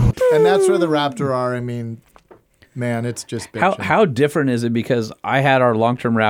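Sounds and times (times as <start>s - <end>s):
person imitating a Honda Civic engine noise: 0.1s - 1.1s
speech: 0.5s - 2.1s, 2.7s - 6.2s.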